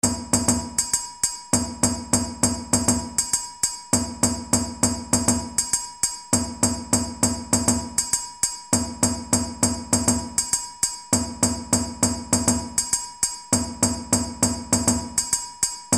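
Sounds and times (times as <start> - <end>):
dundun drum: 0.0 - 0.9, 1.6 - 3.3, 4.0 - 5.7, 6.4 - 8.0, 8.8 - 10.5, 11.2 - 15.9.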